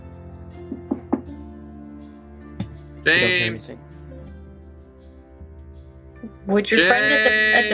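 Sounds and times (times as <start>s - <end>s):
knocking on a door: 0.7s - 1.4s
speech: 3.0s - 3.8s, 6.5s - 7.7s
laughter: 6.8s - 7.7s.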